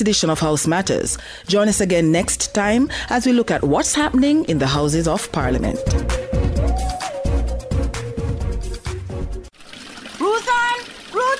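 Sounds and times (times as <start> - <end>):
speech: 0.0 - 6.2
music: 0.0 - 9.5
tap water overflowing a full bucket: 9.5 - 11.3.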